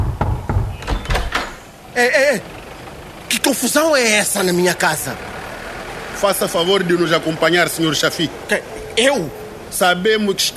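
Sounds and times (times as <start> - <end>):
heavy pounding on the door of a home: 0.0 - 1.6
speech: 2.0 - 2.6, 3.3 - 5.3, 6.2 - 10.5.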